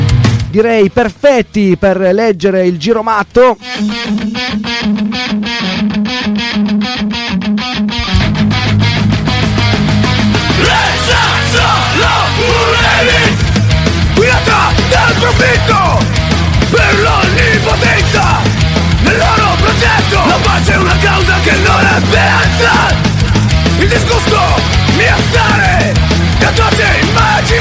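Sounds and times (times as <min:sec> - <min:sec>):
distorted guitars: 0:00.0 - 0:27.5
speech: 0:00.5 - 0:07.8
person shouting vocals in a band song: 0:10.6 - 0:13.4, 0:14.2 - 0:16.0, 0:16.7 - 0:23.1, 0:23.8 - 0:27.5.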